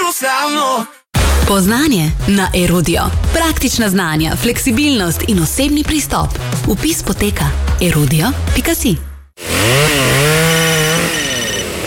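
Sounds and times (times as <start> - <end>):
speech: 0.4 - 10.3
chainsaw cutting through wood: 9.4 - 11.8.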